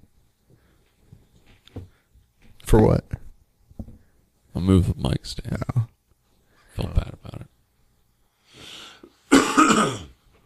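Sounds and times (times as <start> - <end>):
speech: 2.7 - 3.2, 4.6 - 5.8
person coughing: 9.3 - 10.2.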